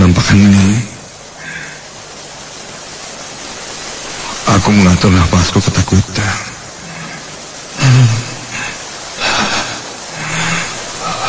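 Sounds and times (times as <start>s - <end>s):
river water flowing: 0.0s - 11.2s
speech: 0.3s - 0.9s, 4.6s - 6.5s.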